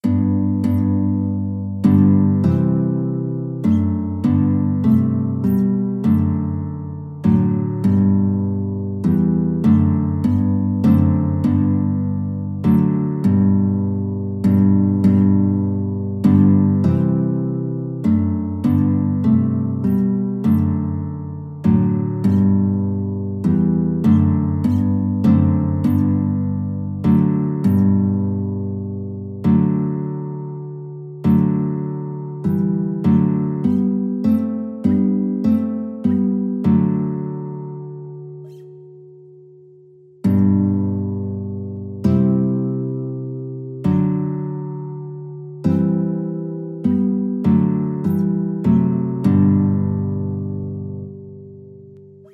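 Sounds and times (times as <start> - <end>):
carol played on guitar: 0.0 - 52.3.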